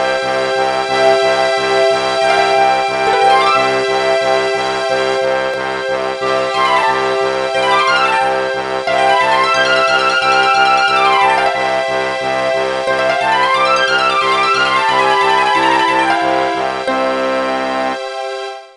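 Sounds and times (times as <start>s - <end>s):
piano overture: 0.2s - 18.4s.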